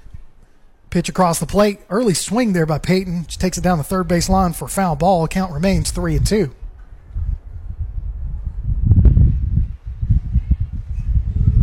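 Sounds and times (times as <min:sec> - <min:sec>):
speech: 0:00.9 - 0:06.6
gust of wind buffeting the microphone during a ball game: 0:02.8 - 0:11.6.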